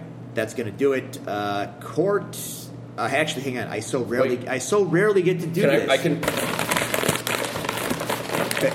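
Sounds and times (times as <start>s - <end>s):
speech: 0.4s - 6.6s, 8.6s - 8.7s
paper burger wrappers crinkling and rustling: 6.2s - 8.7s.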